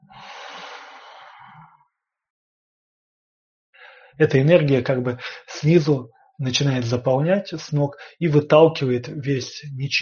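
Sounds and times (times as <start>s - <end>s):
person exhaling during a guided breathing meditation: 0.0s - 1.8s
speech: 4.2s - 10.0s.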